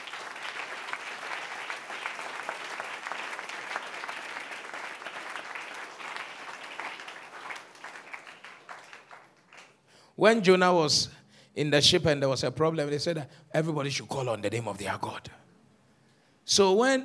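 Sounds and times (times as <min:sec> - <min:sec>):
audience clapping at a religious gathering: 0:00.0 - 0:09.9
speech: 0:10.2 - 0:15.4, 0:16.5 - 0:17.0.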